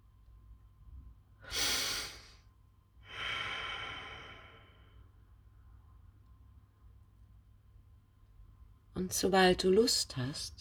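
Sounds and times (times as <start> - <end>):
faint low hum: 0.0 - 10.6
slow deep breathing: 1.4 - 2.4, 3.0 - 5.1
speech: 9.0 - 10.6.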